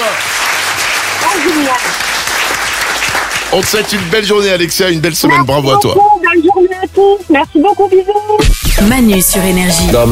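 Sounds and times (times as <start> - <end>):
crowd applauding and cheering for a game prize winner: 0.0 - 5.2
speech: 3.5 - 6.1, 7.0 - 10.1.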